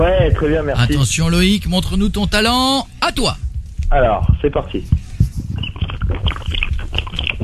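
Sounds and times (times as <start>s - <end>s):
speech: 0.2s - 5.0s
person gulping down a fizzy drink: 5.8s - 7.4s.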